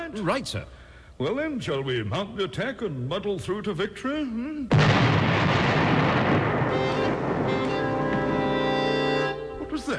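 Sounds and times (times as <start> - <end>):
speech: 0.1 - 8.0, 9.8 - 9.9
heavy gunfire barrage: 4.7 - 9.3.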